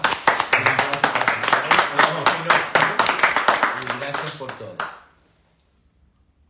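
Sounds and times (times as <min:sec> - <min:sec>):
audience applause: 0:00.0 - 0:05.0.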